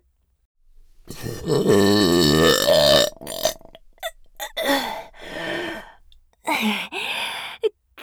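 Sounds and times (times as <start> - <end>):
short breathy gasps and exhales: 0.7 - 7.6
very loud drawn-out burp: 0.8 - 6.1
speech: 1.5 - 2.8.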